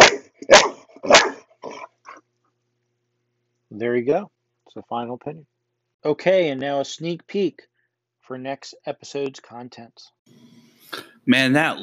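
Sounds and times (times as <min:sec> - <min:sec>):
dog barking: 0:00.0 - 0:02.2
speech: 0:03.8 - 0:07.7, 0:08.3 - 0:11.8.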